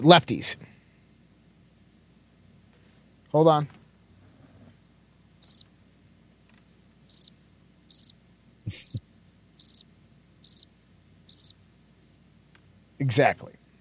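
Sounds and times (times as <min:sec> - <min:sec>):
speech: 0:00.0 - 0:00.7, 0:03.3 - 0:03.8, 0:13.0 - 0:13.6
crickets chirping: 0:05.4 - 0:05.8, 0:07.0 - 0:11.7.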